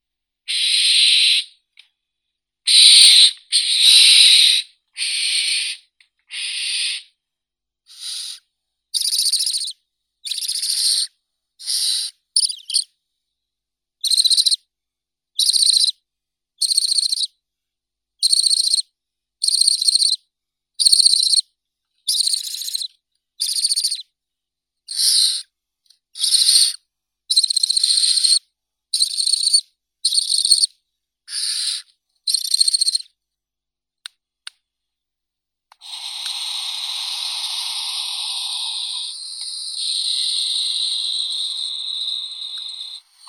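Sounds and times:
barn owl Tyto alba chicks calling: 0:00.5 - 0:01.5, 0:02.7 - 0:07.1, 0:07.9 - 0:08.4, 0:09.0 - 0:12.8, 0:14.0 - 0:14.6, 0:15.4 - 0:15.9, 0:16.6 - 0:17.3, 0:18.2 - 0:18.8, 0:19.4 - 0:20.2, 0:20.8 - 0:21.4, 0:22.1 - 0:24.0, 0:24.9 - 0:25.4, 0:26.2 - 0:28.4, 0:29.0 - 0:30.7, 0:31.3 - 0:33.0, 0:35.7 - 0:43.2.

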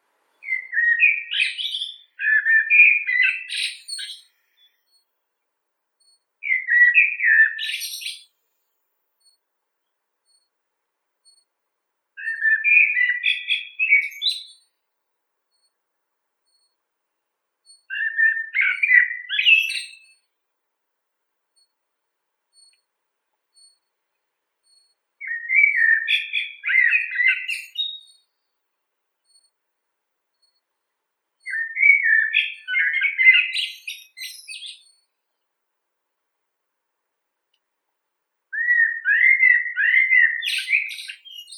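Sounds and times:
blackbird Turdus merula: 0:00.3 - 0:05.0, 0:06.0 - 0:08.4, 0:12.2 - 0:14.7, 0:17.7 - 0:20.2, 0:24.7 - 0:28.4, 0:31.4 - 0:35.0, 0:38.6 - 0:41.5.

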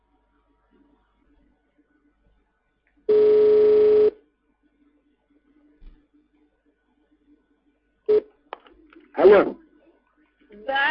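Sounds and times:
telephone ringing tone while a call is being placed: 0:03.1 - 0:04.2
speech: 0:09.2 - 0:09.6.

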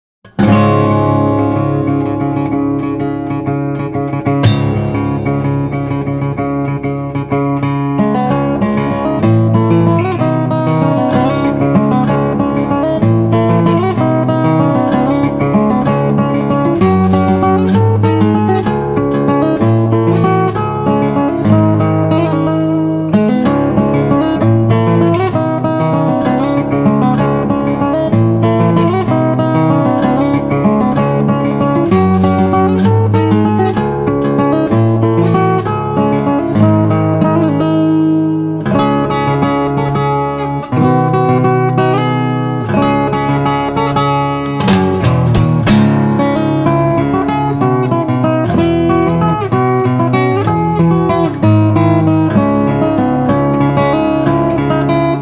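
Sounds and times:
fingerstyle guitar: 0:00.2 - 0:55.1.

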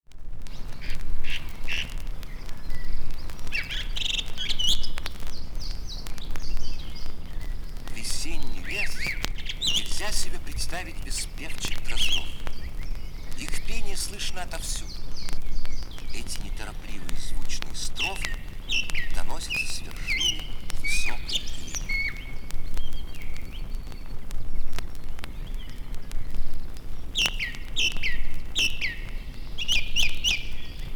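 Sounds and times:
bird voices in nature: 0:00.2 - 0:30.9.

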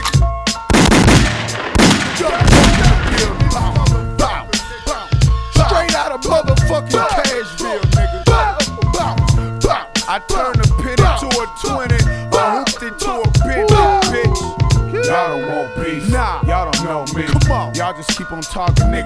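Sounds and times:
rapid gunshots: 0:00.7 - 0:05.6
backing track with deep bass and tonal melody: 0:01.4 - 0:19.0
speech: 0:18.3 - 0:19.0.

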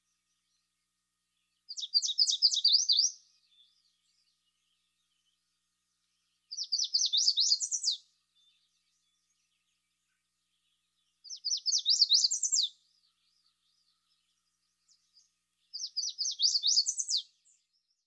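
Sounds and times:
yellow warbler singing: 0:00.0 - 0:18.0.

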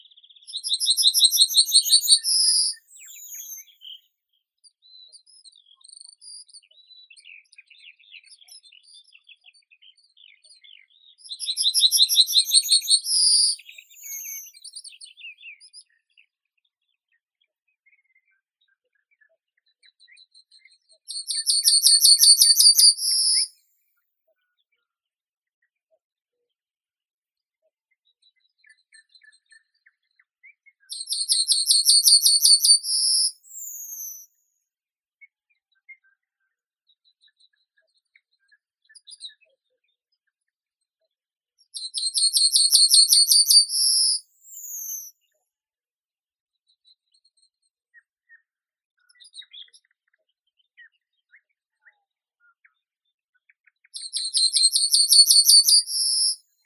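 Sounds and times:
yellowhammer Emberiza citrinella calling: 0:00.5 - 0:04.0, 0:11.4 - 0:14.6, 0:21.1 - 0:23.5, 0:30.9 - 0:34.2, 0:41.8 - 0:45.1, 0:54.0 - 0:56.4.

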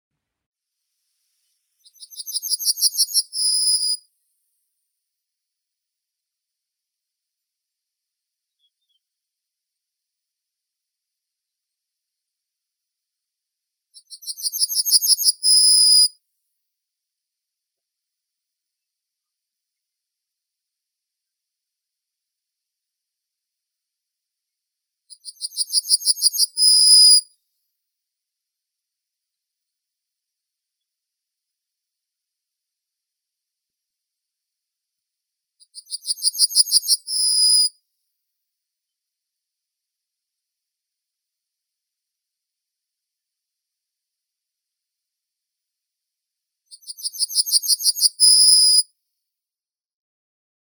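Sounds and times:
yellowhammer Emberiza citrinella: 0:01.9 - 0:04.0, 0:14.0 - 0:16.1, 0:25.2 - 0:27.2, 0:35.7 - 0:37.7, 0:46.8 - 0:48.8.

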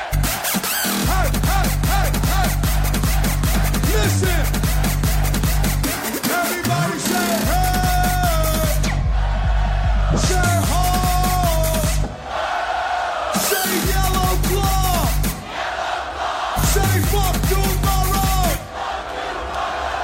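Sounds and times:
pounding electronic music with heavy bass: 0:00.0 - 0:12.3, 0:13.3 - 0:15.5, 0:16.6 - 0:18.7
crowd screaming and cheering at a music drop: 0:00.0 - 0:20.0.

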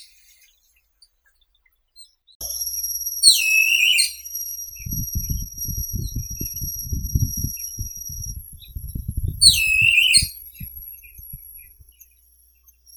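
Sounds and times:
bulbul Microscelis amaurotis: 0:02.4 - 0:12.9.

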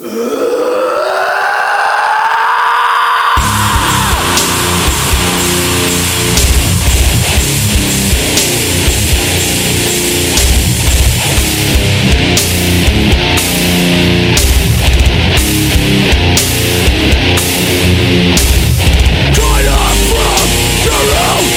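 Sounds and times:
loud sustained human scream: 0:00.0 - 0:08.0, 0:19.4 - 0:21.5
dense crashing heavy music: 0:03.4 - 0:21.5.

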